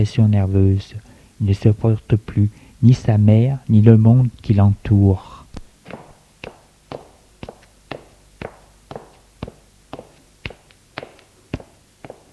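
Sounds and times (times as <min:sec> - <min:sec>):
speech: 0:00.0 - 0:05.3
footsteps climbing a staircase: 0:05.8 - 0:12.3.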